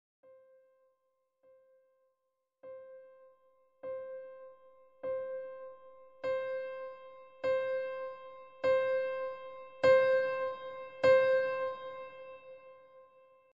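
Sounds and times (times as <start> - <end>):
piano playing from very soft to very loud: 2.7 - 13.4.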